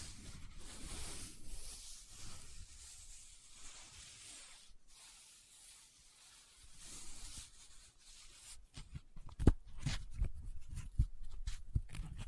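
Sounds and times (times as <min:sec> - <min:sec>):
soft rubbing hiss of paper: 0:00.0 - 0:08.6
brief paper folds: 0:00.0 - 0:12.1.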